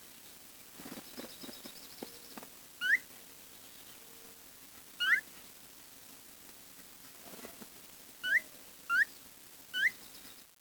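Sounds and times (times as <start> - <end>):
bird calls with short sharply rising chirps: 1.0 - 4.0, 5.0 - 5.2, 8.2 - 10.5.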